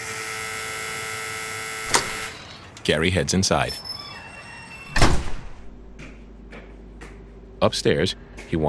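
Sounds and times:
apartment door buzzer buzzing: 0.0s - 2.7s, 4.0s - 5.2s
speech: 2.9s - 3.9s, 7.6s - 8.6s.

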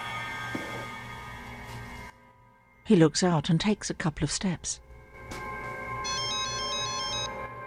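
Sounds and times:
low hum: 0.6s - 7.4s
speech: 2.9s - 5.4s
mobile phone ringtone playing electronic melody: 6.0s - 7.6s.

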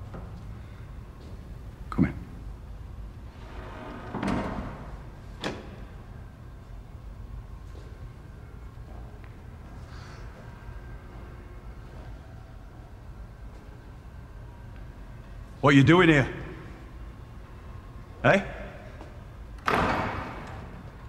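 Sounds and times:
speech: 2.0s - 2.2s, 15.6s - 16.4s, 18.2s - 18.5s
door being pushed open: 3.5s - 5.9s, 19.6s - 20.8s.

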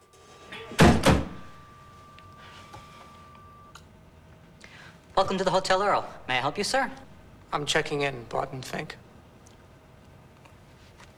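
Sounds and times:
faint steady hum: 0.0s - 11.1s
heavy wooden door swinging open with thuds: 0.8s - 1.6s
speech: 5.2s - 9.0s.

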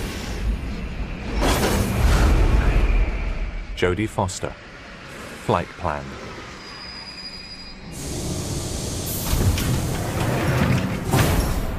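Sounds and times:
yellow underground train pulling into a station: 0.0s - 11.7s
underground train doors sliding open: 1.2s - 2.3s, 7.8s - 11.7s
speech: 3.8s - 4.7s, 5.5s - 6.3s.

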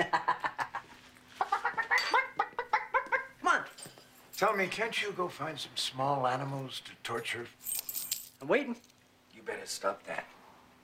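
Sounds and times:
person imitating a chicken clucking: 1.4s - 3.4s
speech: 4.4s - 7.7s, 8.4s - 8.9s, 9.5s - 10.3s.

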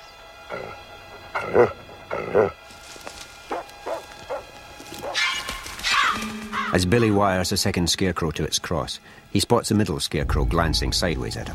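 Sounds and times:
large mongrel dog barking near a cornfield: 1.4s - 2.6s, 3.5s - 6.2s
speech: 1.4s - 2.6s, 6.8s - 11.5s
dog yipping: 3.5s - 6.8s.

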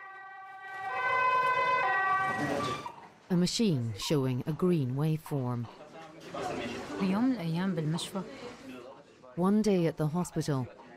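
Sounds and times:
yellow ambulance siren wailing in the street: 0.0s - 3.0s
speech: 2.4s - 6.4s, 7.0s - 8.8s, 9.4s - 10.8s.

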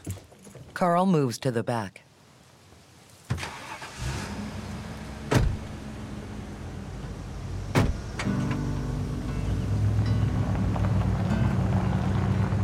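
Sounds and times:
speech: 0.8s - 2.0s
truck towing a trailer engine hum: 3.5s - 12.6s
knocks and thuds: 5.3s - 5.7s, 7.7s - 8.3s.

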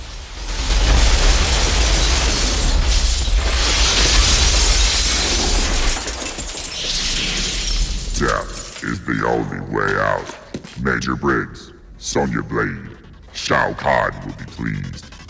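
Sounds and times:
glass shards raining down: 0.0s - 8.8s
glass walls shattering: 0.0s - 8.8s
speech: 9.0s - 15.1s.

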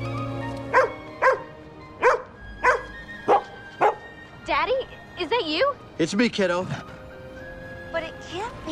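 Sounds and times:
old English sheepdog barking: 0.7s - 4.0s
speech: 4.6s - 7.0s, 8.3s - 8.7s.

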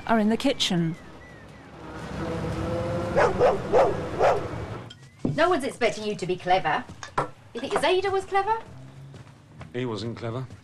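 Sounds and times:
speech: 0.1s - 1.1s, 3.4s - 4.4s, 5.3s - 7.0s, 7.6s - 8.7s, 9.7s - 10.6s
large Alsatian dog barking: 3.1s - 4.6s.

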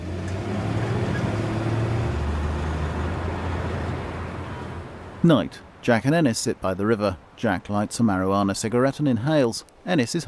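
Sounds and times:
truck engine rumble while driving off: 0.0s - 8.0s
speech: 5.2s - 10.2s.

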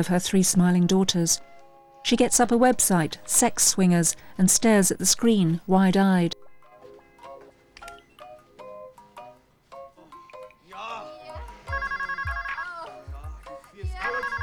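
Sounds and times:
speech: 0.0s - 6.4s
phone ringtone with electronic melody and buzzy ringing: 11.4s - 13.2s, 13.8s - 14.4s.

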